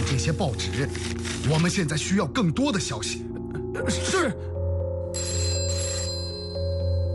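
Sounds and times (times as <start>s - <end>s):
speech: 0.2s - 3.3s, 3.8s - 4.4s
old-style telephone bell ringing: 5.1s - 7.1s.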